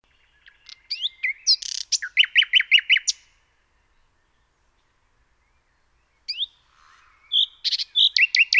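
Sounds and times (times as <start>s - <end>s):
Common nightingale song with high whistled notes and rapid repeated notes: 0.3s - 3.3s, 5.4s - 8.5s.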